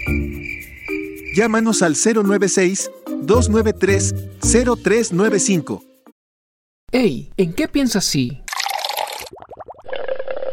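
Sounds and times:
speech: 1.4 - 5.9, 6.9 - 8.4
fizzing pour: 8.5 - 10.5
liquid bubbling and gurgling: 8.5 - 10.5.

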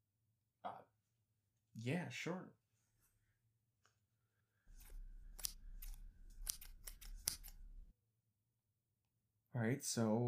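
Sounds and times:
speech: 1.8 - 2.6, 9.6 - 10.2
scissors snipping: 4.7 - 7.9.

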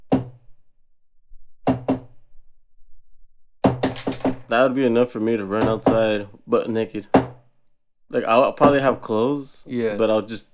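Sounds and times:
sharp knocks on a bathroom door: 0.1 - 0.4, 1.7 - 2.1, 3.6 - 4.6, 5.5 - 6.2, 7.1 - 7.4, 8.6 - 9.0
speech: 4.5 - 7.2, 8.1 - 10.5.

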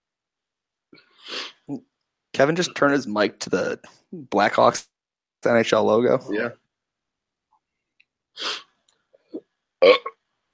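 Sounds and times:
speech: 0.9 - 6.6, 8.4 - 8.6, 9.8 - 10.1
raspy and deep burps: 9.8 - 10.2.

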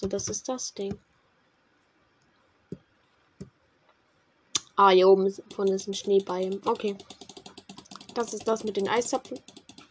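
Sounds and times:
speech: 0.0 - 1.1, 4.8 - 7.3, 8.2 - 9.5
computer mouse clicks while playing a video game: 5.5 - 9.9.

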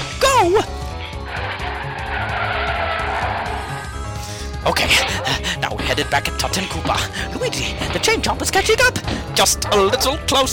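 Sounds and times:
speech: 0.4 - 0.8, 4.6 - 10.5
car engine rumbling: 0.7 - 6.1
car tires squealing in a skid around a corner: 0.8 - 4.0.

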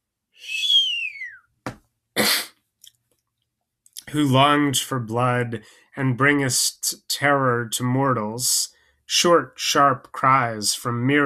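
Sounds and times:
whistling sigh sliding downward in pitch: 0.4 - 1.6
short breathy puff: 2.2 - 2.6
speech: 4.1 - 11.2.

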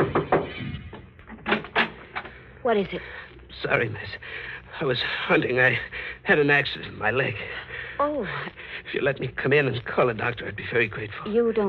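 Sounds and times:
dull knocks on a wooden door: 0.0 - 0.6
speech: 2.6 - 11.6.

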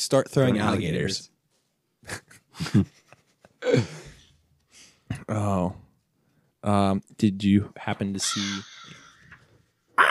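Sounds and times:
speech: 0.0 - 1.3, 2.0 - 3.0, 3.6 - 4.0, 5.3 - 5.8, 6.6 - 9.0
crow cawing outdoors: 8.2 - 9.4.

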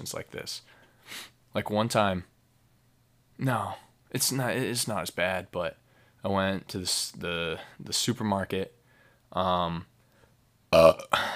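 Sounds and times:
speech: 0.0 - 2.3, 3.4 - 9.9, 10.7 - 11.3
loud throaty belch: 10.8 - 11.3.

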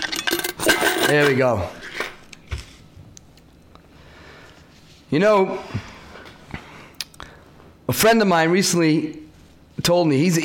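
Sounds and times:
coins dropping into a pushka charity box: 0.0 - 1.4
speech: 1.1 - 1.8, 5.1 - 5.8, 7.9 - 9.2, 9.8 - 10.4.

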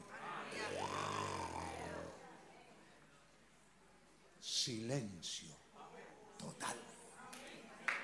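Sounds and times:
person imitating a lion's roar with a rumbling throat growl: 0.5 - 2.2
speech: 4.7 - 5.7.

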